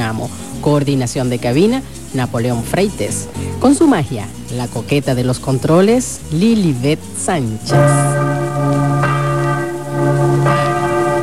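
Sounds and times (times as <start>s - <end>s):
speech: 0.1s - 8.9s
church bells ringing for midnight Christmas mass: 7.7s - 11.2s.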